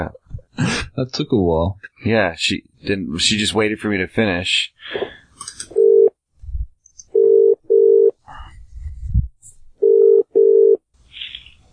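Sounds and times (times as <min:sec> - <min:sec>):
speech: 0:00.0 - 0:05.7
telephone line tone after a hang-up: 0:05.8 - 0:06.1, 0:07.2 - 0:08.1, 0:09.8 - 0:10.8.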